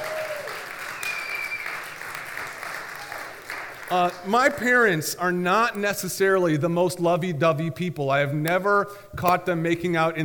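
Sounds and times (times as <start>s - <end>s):
scattered half-hearted applause from a modest audience: 0.0s - 4.3s
speech: 3.9s - 10.2s.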